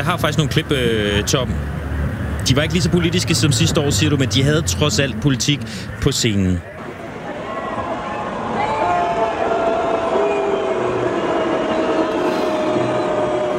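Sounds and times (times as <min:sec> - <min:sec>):
speech: 0:00.0 - 0:01.8, 0:02.5 - 0:06.8
large concert audience roaring and shouting: 0:06.7 - 0:13.5.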